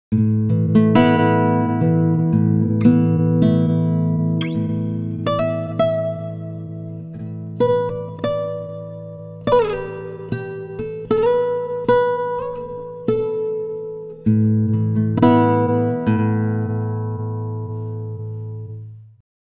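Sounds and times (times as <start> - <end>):
timestretched guitar: 0.1 - 19.2.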